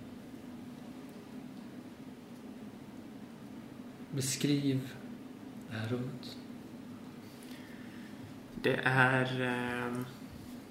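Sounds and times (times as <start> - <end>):
soft steady rain: 0.0 - 10.6
speech: 4.1 - 5.0, 5.7 - 6.4, 8.6 - 10.2.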